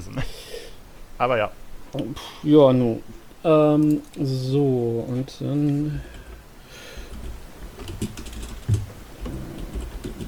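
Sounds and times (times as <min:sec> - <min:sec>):
speech: 0:01.2 - 0:06.2
typing on a computer keyboard: 0:07.1 - 0:10.2.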